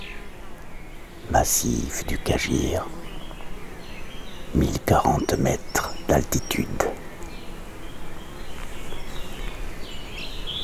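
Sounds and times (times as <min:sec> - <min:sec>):
birds singing in mountain forest: 0:00.0 - 0:10.6
steady outdoor hush: 0:01.1 - 0:07.3
speech: 0:01.3 - 0:03.0, 0:04.5 - 0:07.0.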